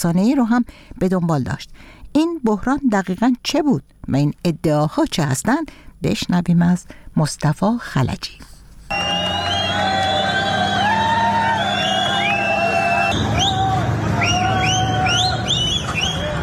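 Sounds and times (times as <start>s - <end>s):
speech: 0.0s - 9.5s
large crowd of Moroccan migrants shouting and yelling in Ceuta: 8.9s - 16.4s
many shrill whistles from a migrant crowd: 8.9s - 16.4s.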